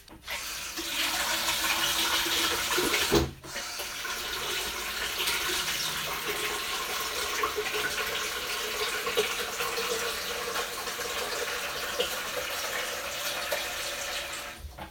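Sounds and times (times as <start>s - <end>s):
water pouring into a filter tank: 0.3s - 14.7s.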